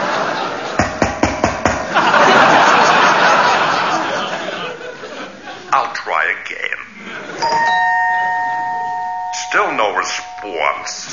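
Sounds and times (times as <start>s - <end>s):
laughter: 0.0s - 0.8s, 1.8s - 6.0s, 6.9s - 7.7s
doorbell chiming: 7.4s - 11.1s.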